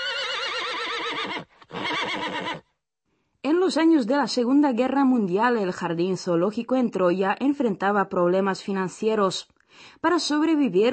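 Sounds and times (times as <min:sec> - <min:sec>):
Przewalski's horse whinnying: 0:00.0 - 0:02.7
speech: 0:01.2 - 0:01.5, 0:03.7 - 0:10.9.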